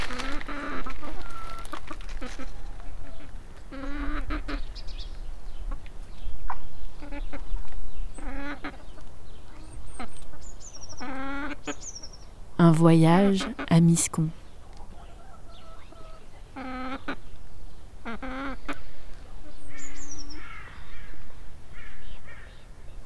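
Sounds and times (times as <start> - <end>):
chickens clucking and squawking in a village henhouse: 0.2 - 4.8, 6.9 - 11.9, 14.6 - 17.3, 17.9 - 20.5
speech: 12.7 - 14.4.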